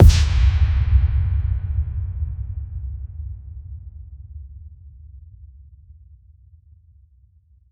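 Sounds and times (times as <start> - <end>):
impact hit sound effect: 0.0 - 3.3.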